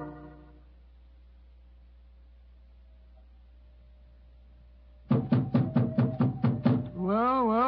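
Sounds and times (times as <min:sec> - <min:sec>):
loud knocks on a door: 0:05.1 - 0:07.0
person speaking: 0:07.0 - 0:07.6.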